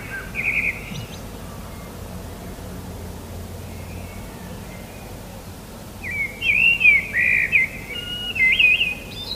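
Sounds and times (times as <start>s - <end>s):
common blackbird singing: 0.0s - 2.0s, 3.6s - 5.2s, 6.0s - 9.3s
low steady rumble: 0.0s - 6.0s.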